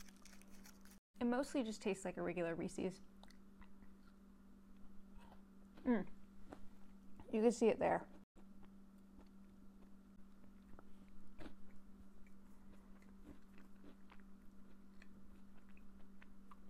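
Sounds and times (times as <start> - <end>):
crunchy biting and chewing of a peanut butter cup with Oreo: 0.0 - 1.0, 8.4 - 16.6
low constant hum: 0.0 - 16.6
speech: 1.2 - 3.1, 5.8 - 6.2, 7.3 - 8.2.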